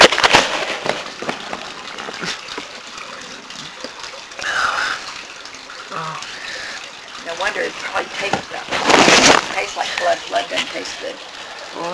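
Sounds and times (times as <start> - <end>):
plastic trash can liner rustling: 0.0 - 4.1, 7.8 - 11.0
spitting water from rinsing the mouth into a plastic-lined trash can: 0.0 - 11.9.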